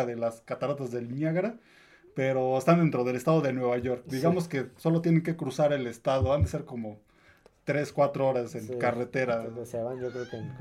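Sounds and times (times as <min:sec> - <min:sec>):
speech: 0:00.0 - 0:07.1, 0:07.7 - 0:10.6
cat meowing: 0:09.8 - 0:10.6.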